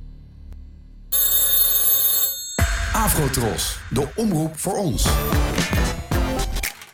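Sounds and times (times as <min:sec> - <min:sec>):
telephone bell ringing: 0:01.2 - 0:03.4
speech: 0:03.0 - 0:05.6.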